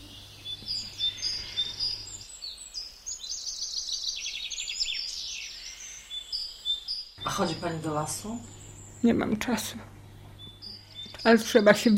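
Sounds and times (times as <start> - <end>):
steady hum: 0.0 - 2.3, 7.2 - 11.9
several birds singing and chirping: 0.0 - 11.9
speech: 7.3 - 9.9, 11.2 - 11.9.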